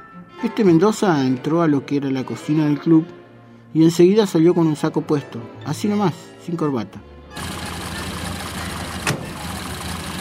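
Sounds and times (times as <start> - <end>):
speech: 0.3 - 7.5
old Plymouth car engine idling: 7.4 - 10.1.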